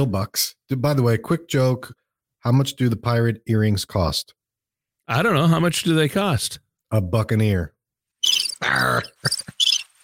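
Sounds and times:
speech: 0:00.0 - 0:04.4, 0:05.1 - 0:07.8, 0:08.6 - 0:09.4
cricket chirping: 0:08.2 - 0:10.0.

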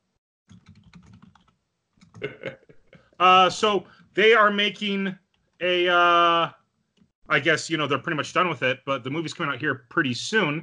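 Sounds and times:
typing on a computer keyboard: 0:00.5 - 0:02.3
speech: 0:03.2 - 0:06.6, 0:07.3 - 0:10.6.

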